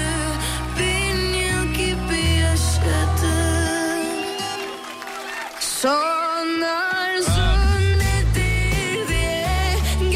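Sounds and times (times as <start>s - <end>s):
song with steady bass line and sustained chords: 0.0s - 4.7s, 5.9s - 10.1s
melodic female vocal: 0.0s - 4.8s, 5.6s - 10.1s
speech: 5.8s - 6.0s.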